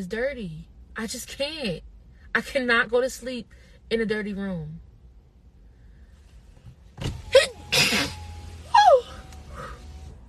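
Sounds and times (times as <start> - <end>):
speech: 0.0 - 4.9
person sneezing loudly: 7.7 - 8.2.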